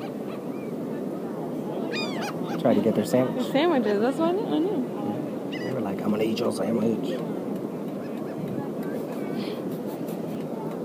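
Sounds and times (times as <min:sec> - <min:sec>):
seagulls calling: 0:00.0 - 0:06.4, 0:07.9 - 0:09.9
steady outdoor noise: 0:00.0 - 0:10.8
speech: 0:02.6 - 0:05.1, 0:06.0 - 0:07.4.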